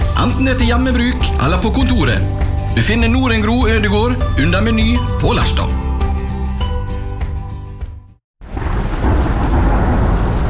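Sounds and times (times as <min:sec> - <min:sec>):
music: 0:00.0 - 0:08.2
speech: 0:00.2 - 0:05.9
heavy rain with deep rumbling: 0:08.4 - 0:10.4.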